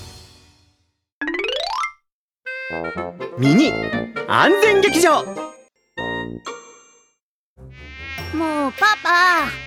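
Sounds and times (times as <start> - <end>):
speech: 2.7 - 5.6, 8.3 - 9.6
mosquito whine buzzing: 7.6 - 9.6.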